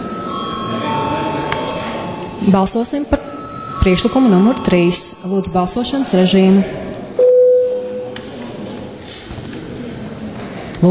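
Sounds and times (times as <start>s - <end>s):
chairman's bell ringing during a parliament session before a vote: 0.0s - 6.5s
speech: 2.4s - 6.9s, 10.8s - 10.9s.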